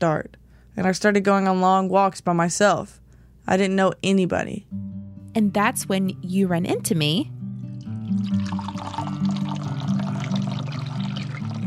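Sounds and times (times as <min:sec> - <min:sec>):
speech: 0:00.0 - 0:07.4, 0:08.1 - 0:09.0
tea pouring into cups: 0:07.8 - 0:11.6.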